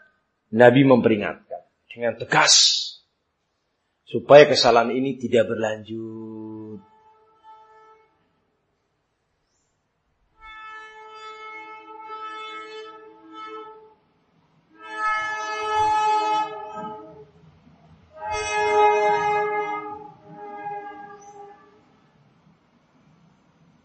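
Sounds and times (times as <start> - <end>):
speech: 0.5 - 2.9, 4.1 - 6.9
chord-like train horn blasts in a radio advertisement: 6.0 - 8.2, 10.4 - 14.0, 14.7 - 17.5, 18.1 - 22.0.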